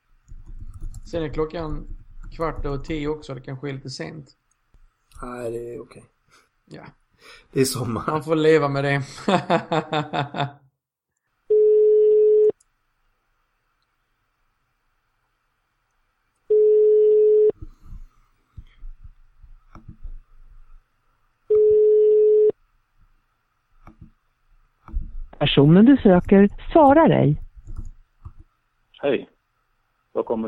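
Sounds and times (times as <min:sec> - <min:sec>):
speech: 0:01.1 - 0:04.4, 0:05.2 - 0:10.6, 0:25.6 - 0:27.4, 0:29.0 - 0:29.3, 0:30.2 - 0:30.4
laughter: 0:09.1 - 0:10.6
outgoing Skype call ringing tone: 0:11.5 - 0:12.5, 0:16.5 - 0:17.5, 0:21.5 - 0:22.6.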